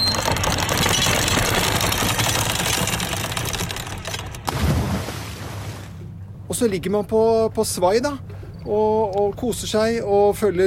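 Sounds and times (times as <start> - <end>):
boat anchor chain running out fast: 0.0 - 4.5
speech: 6.6 - 10.6.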